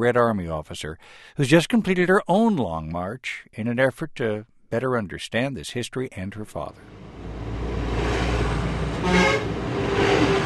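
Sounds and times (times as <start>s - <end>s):
speech: 0.0s - 7.1s
heavy buses grinding up a steep mountain highway above the Min River: 6.8s - 10.4s
bus horn toot: 8.9s - 10.4s.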